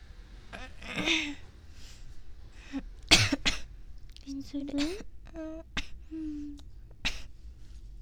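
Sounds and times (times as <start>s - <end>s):
quiet conversational speech: 0.4s - 8.0s
person coughing: 0.6s - 1.4s, 3.1s - 3.7s, 4.7s - 5.1s, 5.8s - 7.3s
speech: 4.5s - 5.5s.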